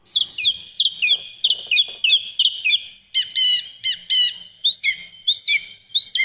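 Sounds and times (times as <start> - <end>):
song thrush singing: 0.0 - 6.2.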